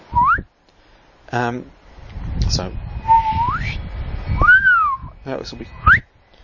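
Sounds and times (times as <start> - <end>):
gravitational wave chirp sonification rising tone: 0.1 - 0.5, 2.6 - 6.1.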